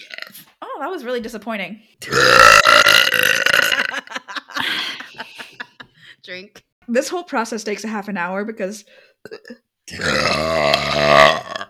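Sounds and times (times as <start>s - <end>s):
long loud croaking burp during a burping drinking game: 0.0s - 0.4s, 2.0s - 4.1s, 9.3s - 11.6s
speech: 0.8s - 3.4s, 6.3s - 11.3s
laughter: 3.7s - 6.2s.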